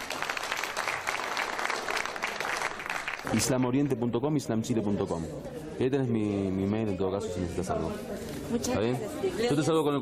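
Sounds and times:
loud sustained applause from a crowd: 0.0s - 3.6s
speech: 3.2s - 10.0s.

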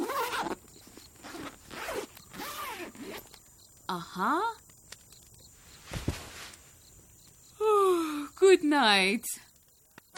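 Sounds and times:
zipper pulled along a sleeping bag: 0.0s - 0.6s, 1.2s - 3.3s
speech: 3.9s - 4.6s, 8.6s - 9.4s.

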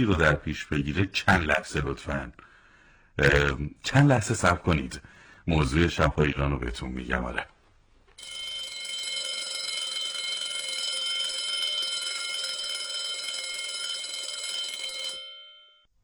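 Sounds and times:
speech: 0.0s - 2.5s, 3.2s - 7.6s
electric school bell ringing: 8.2s - 15.9s.

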